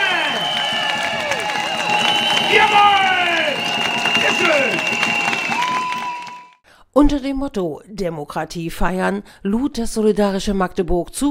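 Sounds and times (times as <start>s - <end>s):
large crowd shouting and cheering: 0.0s - 6.6s
speech: 2.5s - 3.1s, 7.0s - 11.2s.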